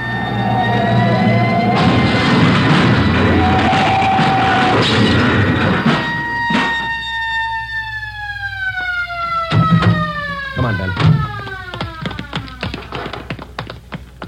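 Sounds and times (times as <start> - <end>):
wailing siren tones: 0.0 - 13.0
loud sustained grinding roar of truck impact and debris: 0.1 - 6.9
big truck crashing into a storefront: 1.6 - 7.0.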